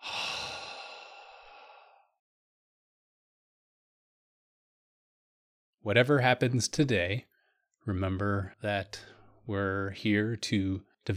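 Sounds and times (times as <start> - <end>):
deep breath exhaled through a wide-open mouth: 0.0 - 2.2
speech: 5.8 - 11.1.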